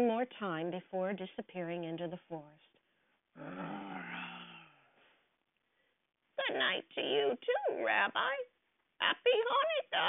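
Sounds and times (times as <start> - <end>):
speech: 0.0 - 2.8, 3.4 - 4.4, 6.4 - 10.0
bear growling: 3.4 - 4.9.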